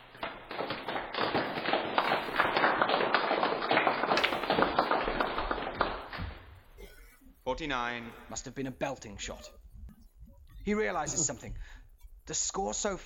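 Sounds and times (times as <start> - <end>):
scattered clapping from a small crowd: 0.0 - 6.4
speech: 7.6 - 9.6, 10.6 - 13.0.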